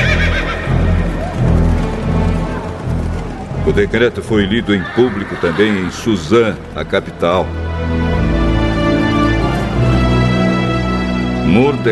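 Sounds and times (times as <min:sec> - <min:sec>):
horses neighing: 0:00.0 - 0:07.3
hooves clip-clopping: 0:00.0 - 0:11.3
speech: 0:03.7 - 0:08.2, 0:11.5 - 0:11.9.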